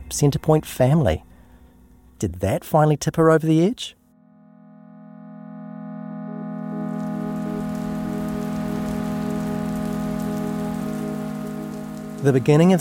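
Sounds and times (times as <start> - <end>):
speech: 0.1 - 1.3, 2.2 - 4.0, 12.2 - 12.7
low sustained hum: 4.1 - 12.7
steady rain at night pattering on a surface: 6.8 - 12.7.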